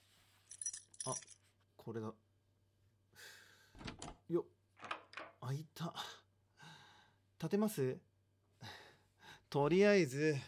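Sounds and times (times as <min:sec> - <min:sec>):
keys jangling while searching for a house key: 0:00.5 - 0:01.4
speech: 0:01.0 - 0:02.3, 0:04.3 - 0:04.6, 0:05.4 - 0:06.2, 0:07.4 - 0:08.1, 0:09.5 - 0:10.4.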